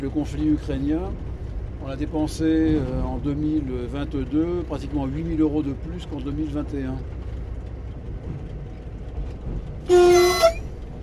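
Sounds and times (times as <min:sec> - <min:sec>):
speech: 0:00.0 - 0:07.3
low rumbling background: 0:00.0 - 0:11.0
train horn sounded by driver: 0:09.8 - 0:10.8.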